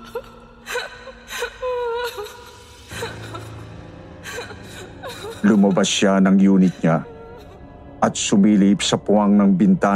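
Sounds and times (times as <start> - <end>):
woman crying, hoarse and muffled: 0.0 - 7.6
speech: 5.4 - 7.1, 8.0 - 9.9.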